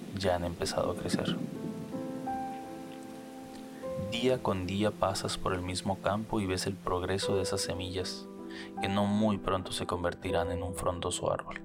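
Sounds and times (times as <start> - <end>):
speech: 0.2 - 1.6, 4.1 - 11.6
steady rain pattering on a hard surface: 2.7 - 3.8.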